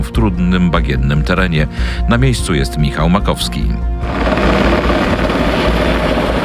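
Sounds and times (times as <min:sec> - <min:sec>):
speech: 0:00.2 - 0:05.0
police Black Hawk helicopter roaring as it scoops water from a reservoir to fight a forest fire: 0:04.0 - 0:06.4.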